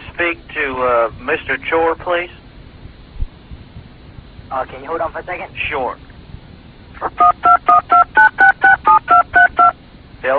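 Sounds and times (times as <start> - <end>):
speech: 0.2 - 2.4, 4.5 - 6.1, 7.0 - 8.2
telephone keypad beeps over a phone line: 7.2 - 9.8.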